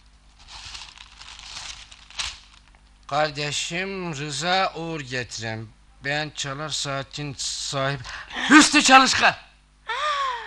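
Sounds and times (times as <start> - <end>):
paper letter being torn open: 0.4 - 2.6
speech: 3.1 - 9.4.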